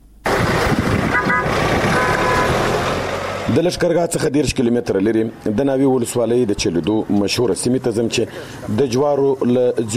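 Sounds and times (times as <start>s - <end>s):
loud steady noise: 0.2s - 9.9s
car horn toot in a maize-farming district near Lashkar Gah in Helmand: 1.1s - 2.7s
speech: 3.5s - 9.9s.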